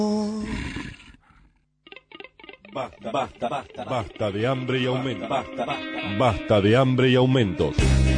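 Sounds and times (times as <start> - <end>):
deep wolf growl sound effect in a radio promo: 0.4 - 1.6
laughter: 2.8 - 6.4
speech: 2.8 - 8.1.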